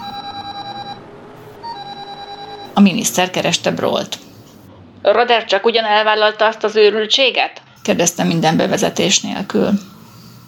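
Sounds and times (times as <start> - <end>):
car phone ringing with a rapid pulsing electronic trill: 0.0 - 3.4
speech: 2.8 - 4.2, 5.0 - 9.9.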